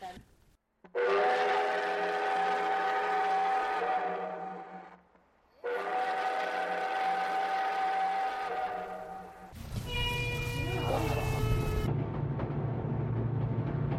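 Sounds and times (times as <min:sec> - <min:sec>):
train whistle blasts: 0:00.9 - 0:11.9
heavy low rumble and mechanical clatter of a departing train: 0:09.5 - 0:13.9.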